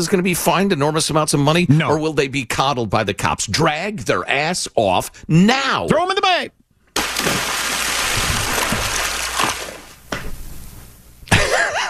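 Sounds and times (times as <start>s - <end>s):
speech: 0.0s - 6.6s
rush of churning water: 7.0s - 10.0s
sharp broadband bursts of splashing: 7.0s - 10.0s.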